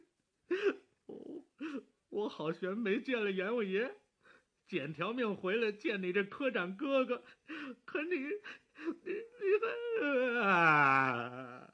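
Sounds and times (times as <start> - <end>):
man crying and sobbing: 0.0 - 1.9, 6.9 - 11.7
speech: 2.2 - 4.0, 4.7 - 11.4.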